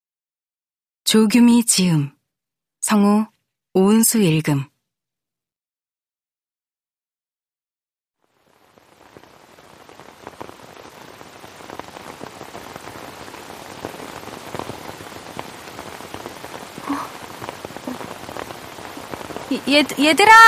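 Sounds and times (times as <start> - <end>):
speech: 1.1 - 2.2, 2.8 - 4.7, 19.5 - 20.4
rain falling: 8.2 - 20.4.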